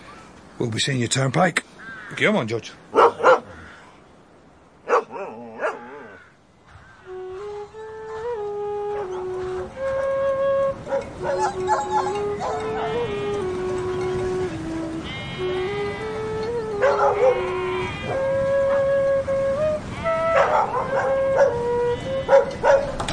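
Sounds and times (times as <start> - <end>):
speech: 0.6 - 3.2
dog yelping: 2.9 - 3.5, 4.9 - 6.3, 10.9 - 13.3, 16.7 - 18.9, 20.2 - 23.0
dog barking: 2.9 - 3.6, 4.9 - 6.1, 10.9 - 13.0, 16.8 - 17.5, 20.4 - 21.6, 22.3 - 23.0
dog howling: 4.9 - 6.3, 7.3 - 9.8, 10.5 - 23.0.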